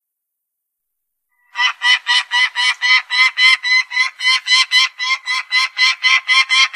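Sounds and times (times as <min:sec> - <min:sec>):
Peregrine falcon Falco peregrinus uttering harsh cackles: 0:01.5 - 0:06.7.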